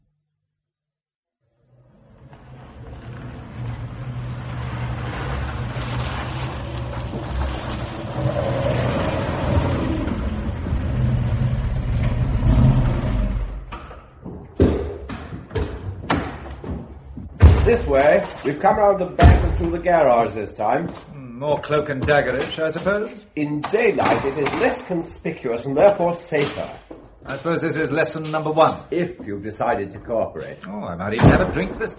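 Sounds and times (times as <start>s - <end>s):
car engine rumbling as the vehicle drives along: 2.1s - 14.0s
sharp thuds: 13.7s - 18.3s, 19.2s - 20.0s
speech: 17.7s - 31.9s.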